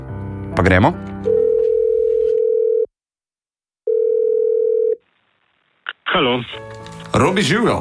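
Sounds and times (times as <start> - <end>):
speech: 0.6 - 1.4, 6.2 - 7.7
telephone ringback tone while placing a call: 1.3 - 2.9, 3.9 - 5.0.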